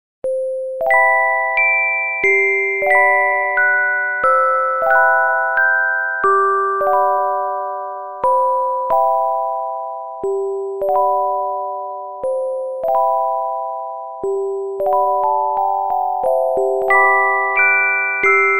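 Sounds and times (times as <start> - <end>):
retro mobile phone music box ringtone: 0.3 - 18.5.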